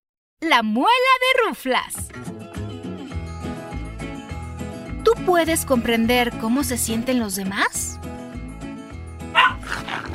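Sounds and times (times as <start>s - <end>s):
speech: 0.4s - 2.3s, 5.1s - 8.2s
small dog barking in short high yaps: 9.3s - 10.1s.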